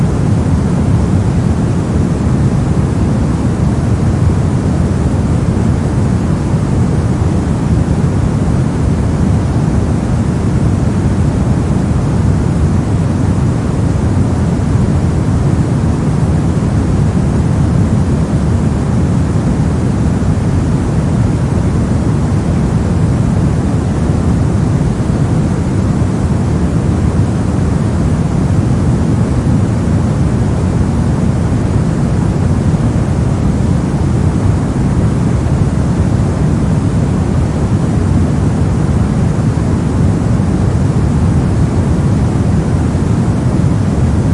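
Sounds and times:
soft steady low rumbling background rush: 0.0s - 44.3s.

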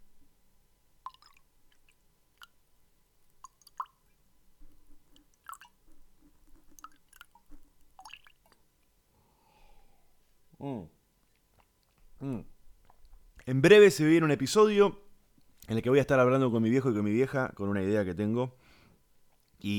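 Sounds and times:
water drips, plops and small splashes: 1.0s - 2.6s, 3.4s - 4.0s, 5.1s - 5.8s, 6.5s - 8.6s
water pouring into a glass: 1.0s - 2.6s, 3.4s - 4.0s, 5.0s - 8.6s
speech: 13.5s - 15.0s, 15.7s - 18.6s, 19.6s - 19.7s.

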